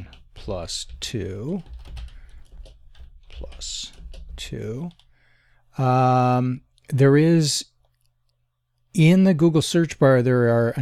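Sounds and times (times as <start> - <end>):
typing on a computer keyboard: 0.0 - 5.1
speech: 0.5 - 1.8, 3.4 - 5.0, 5.8 - 7.7, 9.0 - 10.8.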